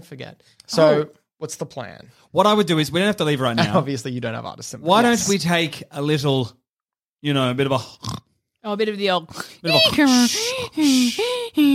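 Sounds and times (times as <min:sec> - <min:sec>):
speech: 0:00.0 - 0:06.6, 0:07.2 - 0:11.7
voice imitating rapid hyperventilating breaths: 0:09.3 - 0:11.7.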